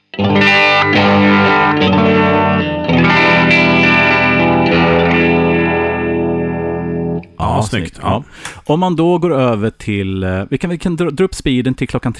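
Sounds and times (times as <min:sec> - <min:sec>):
electric guitar through overdrive pedal with sweeping modulation playing distorted chords: 0:00.0 - 0:07.8
speech: 0:07.6 - 0:12.1.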